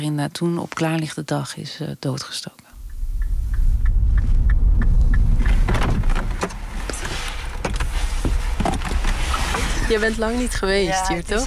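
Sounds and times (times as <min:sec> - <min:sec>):
speech: 0:00.0 - 0:02.6, 0:09.9 - 0:11.4
fast regular ticking inside a car: 0:02.8 - 0:06.7
car engine rumble inside a car: 0:02.8 - 0:11.4
rustling inside a car: 0:05.1 - 0:11.4.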